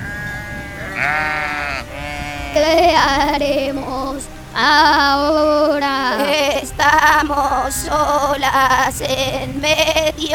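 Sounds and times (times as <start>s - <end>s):
flock of sheep bleating after being frightened by a fire: 0.0s - 4.1s
speech: 2.6s - 10.3s.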